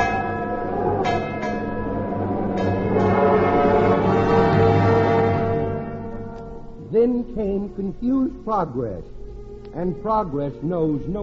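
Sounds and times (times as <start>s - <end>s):
warning bell clanging: 0.0s - 7.1s
speech: 7.4s - 9.2s, 9.8s - 11.2s.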